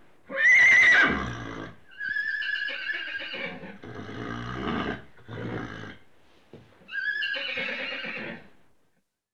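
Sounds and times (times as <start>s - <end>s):
horse whinnying: 0.3s - 6.0s, 6.9s - 8.5s.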